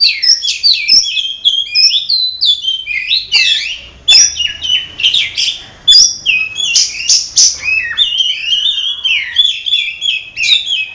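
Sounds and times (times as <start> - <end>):
Oriental magpie-robin singing rich varied whistles and scratchy notes: 0.0 - 10.9.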